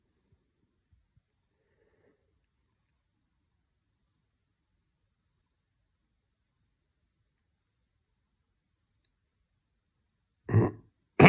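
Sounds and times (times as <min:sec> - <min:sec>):
person clearing throat with a rough guttural rasp: 0:10.5 - 0:11.2.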